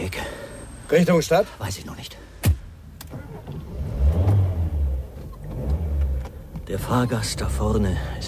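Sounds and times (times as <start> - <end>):
speech: 0.9 - 2.3, 6.7 - 8.2
taxi engine rumbling and revving as the car pulls away: 2.6 - 8.2.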